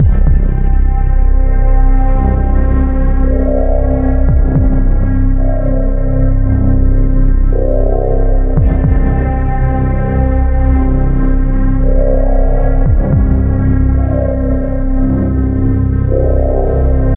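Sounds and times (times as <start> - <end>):
default ambience music: 0.0 - 17.1.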